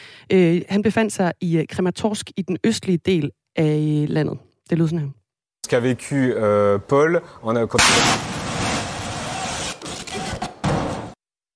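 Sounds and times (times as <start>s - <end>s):
speech: 0.3s - 8.4s
loud heavily distorted explosion blast: 7.8s - 9.2s.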